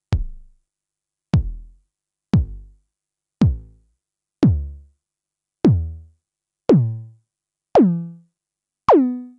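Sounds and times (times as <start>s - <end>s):
Roland TR-909 bass drum with modulated pitch: 0.0s - 0.6s, 1.4s - 2.7s, 3.4s - 3.8s, 4.4s - 4.8s, 5.6s - 6.1s, 6.7s - 7.1s.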